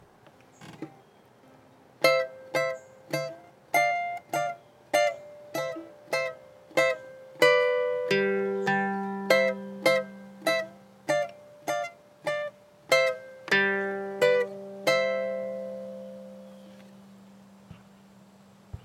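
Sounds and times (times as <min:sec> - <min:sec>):
high harmonic melody in C: 0:02.0 - 0:17.0.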